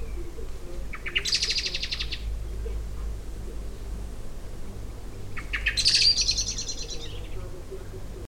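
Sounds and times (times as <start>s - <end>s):
constant low rumble: 0.0s - 8.2s
common blackbird Turdus merula harsh chattering: 0.9s - 2.3s, 5.3s - 7.5s.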